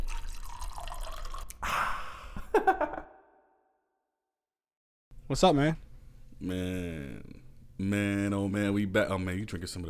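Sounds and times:
drink pouring into a glass: 0.0 - 1.6
speech: 2.6 - 3.2, 5.3 - 5.8, 6.4 - 9.8.

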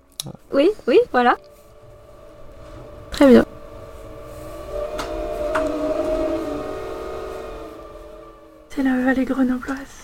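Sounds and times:
speech: 0.2 - 1.5, 3.2 - 3.5, 8.8 - 10.0
wind howling in the Grenoble valley: 0.4 - 10.0.

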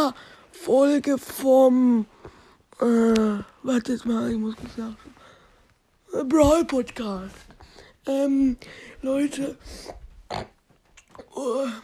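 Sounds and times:
speech: 0.0 - 2.1, 2.8 - 5.2, 6.1 - 10.5, 11.4 - 11.8
wet nasal snort: 9.7 - 11.3.

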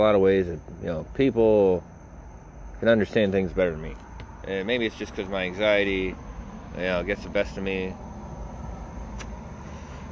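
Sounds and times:
speech: 0.0 - 1.9, 2.8 - 8.0
car driving past: 5.7 - 10.0
sharp tick: 9.1 - 9.4.

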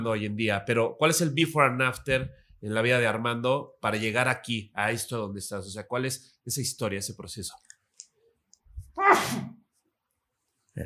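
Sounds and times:
speech: 0.0 - 7.7, 9.0 - 9.6
loud sneeze: 9.0 - 9.6.

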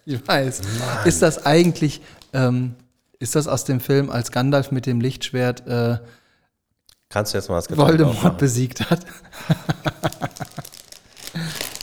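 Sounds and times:
speech: 0.0 - 6.2, 7.1 - 9.9
plastic bag crinkling as a bottle is unwrapped: 0.1 - 2.9, 9.2 - 11.8
laughter: 0.2 - 2.0, 7.8 - 10.8.

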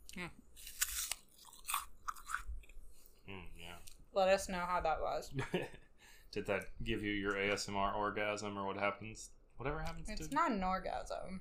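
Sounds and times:
crunchy food chewed against the microphone: 0.0 - 3.1
speech: 0.2 - 0.7, 4.2 - 11.4.

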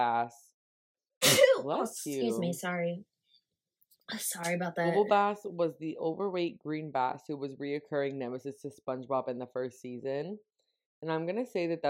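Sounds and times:
speech: 0.0 - 0.5, 1.3 - 3.1, 4.1 - 11.8
loud sneeze: 1.2 - 1.7.

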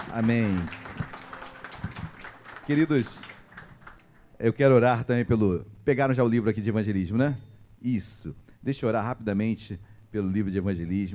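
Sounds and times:
crowd applauding: 0.0 - 4.3
speech: 0.1 - 0.8, 2.7 - 3.3, 4.4 - 11.1.

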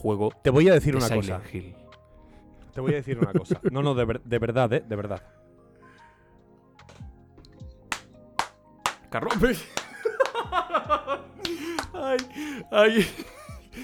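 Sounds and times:
speech: 0.0 - 1.8, 2.8 - 5.4, 9.1 - 9.8, 10.5 - 13.4
laughter: 2.8 - 4.2, 9.2 - 13.8
hand slapping bare buttocks: 6.8 - 12.4.

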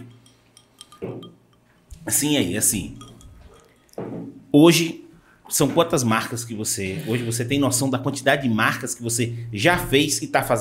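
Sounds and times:
glasses clinking in a toast: 0.0 - 4.2
faint hum: 0.0 - 10.6
speech: 2.0 - 3.0, 4.6 - 10.6.

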